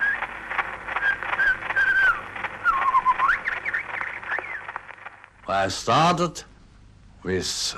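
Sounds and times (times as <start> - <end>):
Indian shama birdsong on an Edison cylinder recording: 0.0 - 4.8
heavy crackle and hiss of a cylinder recording: 0.0 - 7.7
speech: 5.5 - 6.5, 7.2 - 7.7.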